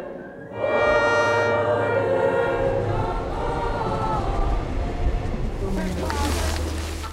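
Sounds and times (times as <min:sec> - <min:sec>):
steady mechanical noise of a train: 0:00.2 - 0:07.1
train horn blast: 0:00.5 - 0:05.4
Transnet Pelo Pepa health care train rumbling in: 0:00.5 - 0:07.1.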